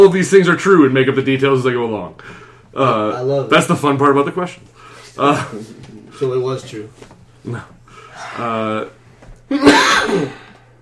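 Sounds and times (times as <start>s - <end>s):
speech: 0.0s - 10.4s
person sneezing: 9.5s - 10.6s.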